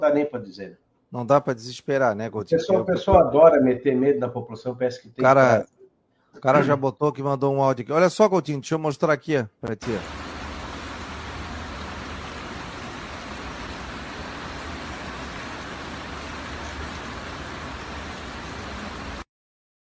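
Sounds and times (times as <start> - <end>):
speech: 0.0 - 10.2
heavy rain pouring in Palhoça: 9.8 - 19.3.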